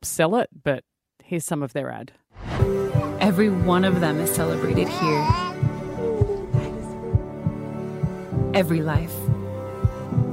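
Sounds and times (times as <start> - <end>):
speech: 0.0 - 5.5, 8.6 - 9.2
slow heartbeat thumping: 3.6 - 10.3.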